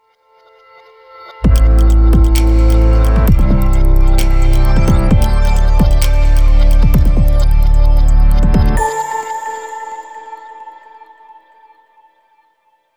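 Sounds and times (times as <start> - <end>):
warm inviting bass and groove music: 1.4 - 8.8.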